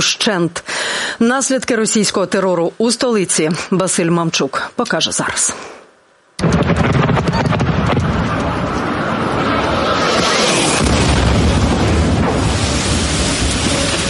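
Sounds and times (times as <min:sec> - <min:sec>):
speech: 0:00.0 - 0:05.8
heavy explosive blast with rumbling: 0:06.4 - 0:14.0
jet drone engine roaring and whistling: 0:08.0 - 0:14.0.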